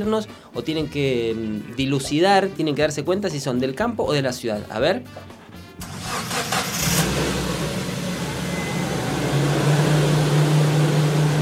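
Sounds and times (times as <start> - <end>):
speech: 0.0 - 5.4
car engine starting: 5.7 - 11.4.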